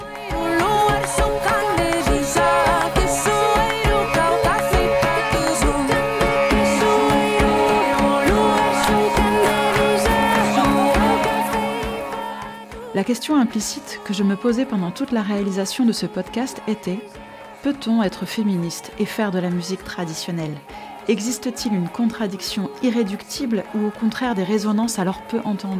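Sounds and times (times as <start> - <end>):
live band playing lively music at outdoor protest rally: 0.0 - 12.4
steady driving percussion beat of live band: 0.0 - 12.9
speech: 13.0 - 25.7.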